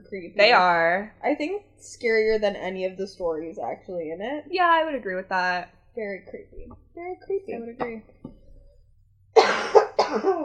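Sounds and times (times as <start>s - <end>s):
speech: 0.1s - 8.4s, 9.6s - 10.4s
loud harsh coughing fit: 9.4s - 10.4s.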